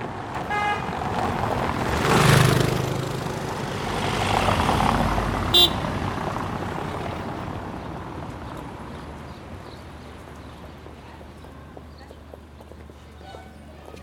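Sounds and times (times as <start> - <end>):
traffic: 0.0 - 14.0
car horn toot: 0.4 - 0.9, 5.5 - 5.9.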